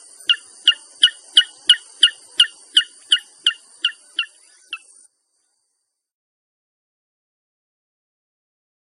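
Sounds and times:
Inaccessible Island rail calling bright high two-toned chirps: 0.0 - 5.1
constant high hiss: 0.0 - 6.2.

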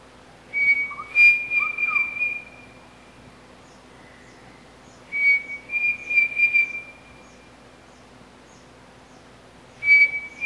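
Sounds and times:
Pavonine cuckoo song of high steady whistled notes: 0.5 - 2.9, 4.0 - 7.6, 9.8 - 10.4.

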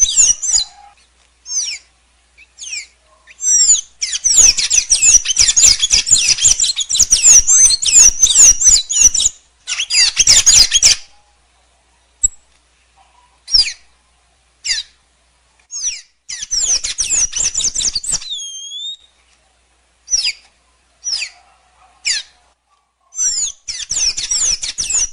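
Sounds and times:
blue dacnis singing high twittering and chips: 0.0 - 11.2, 13.5 - 13.9, 15.7 - 19.2, 20.1 - 21.5, 23.1 - 25.1.

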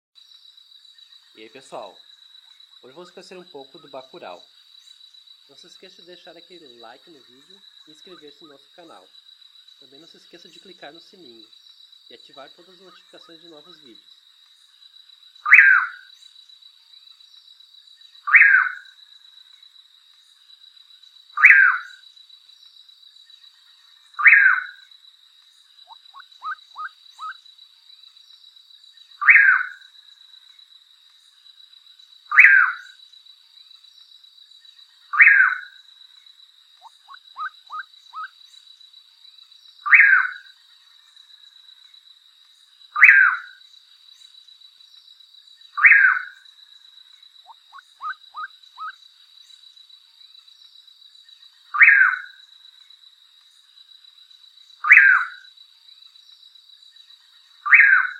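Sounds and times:
nightjar singing: 0.2 - 58.1.

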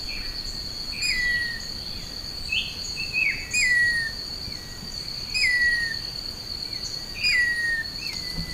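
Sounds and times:
shrill insect hum: 0.0 - 8.5
rufous-tailed attila singing slurred whistles: 1.0 - 1.7, 2.5 - 6.0, 7.2 - 8.5.

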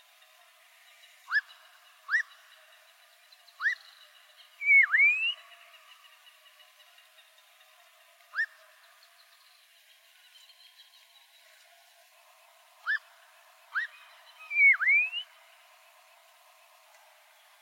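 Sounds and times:
Black-crowned monjita singing rising whistled notes: 1.3 - 2.4, 3.5 - 5.6, 8.3 - 9.4, 12.8 - 13.1, 13.7 - 15.4.

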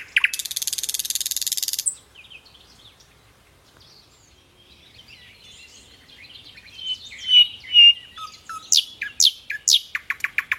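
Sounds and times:
thrush nightingale singing: 0.0 - 10.5.

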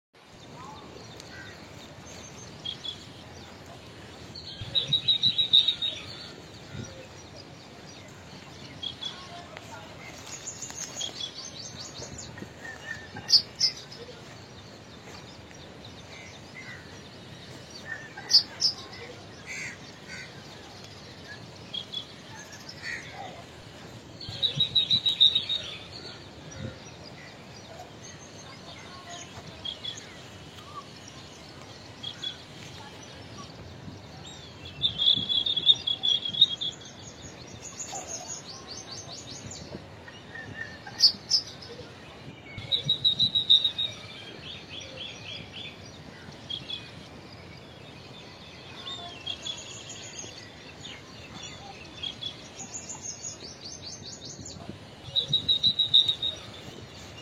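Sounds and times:
Indian silverbill singing: 0.2 - 57.1.

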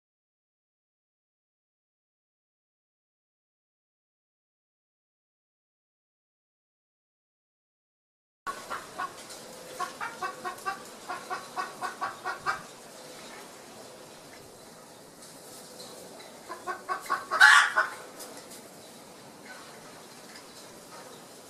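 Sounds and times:
Edwards's pheasant calling: 8.5 - 12.8, 16.4 - 18.2.

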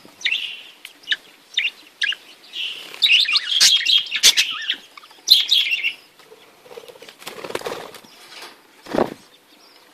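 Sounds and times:
budgerigar song of scratchy high warbled notes and chirps: 0.2 - 6.1.

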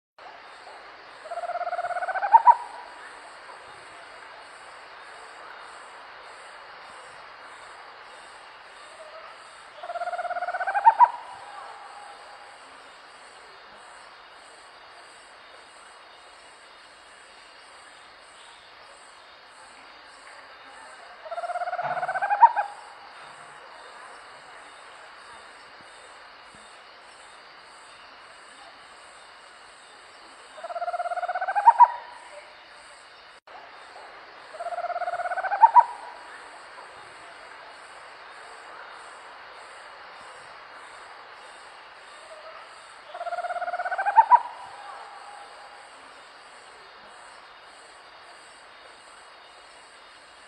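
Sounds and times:
northern owl call: 1.3 - 2.8, 9.8 - 12.3, 21.3 - 22.9, 30.6 - 32.3, 34.6 - 36.2, 43.1 - 45.5.

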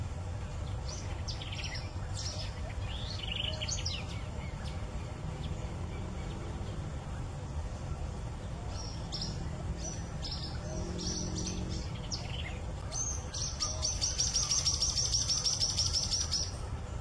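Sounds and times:
steady low rumbling background noise: 0.0 - 16.9
social flycatcher song: 0.1 - 16.9.

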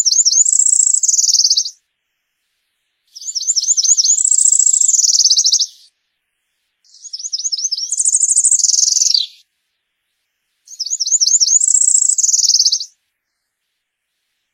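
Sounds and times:
Cerulean warbler song with buzzy phrase and rapid dry trill: 0.0 - 1.8, 3.1 - 5.9, 6.8 - 9.4, 10.7 - 13.0.

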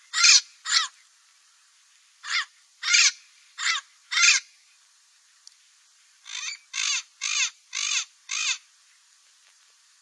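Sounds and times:
Cape parrot calling with grating buzzy squawks: 0.1 - 0.9, 2.2 - 4.4, 6.3 - 8.6.

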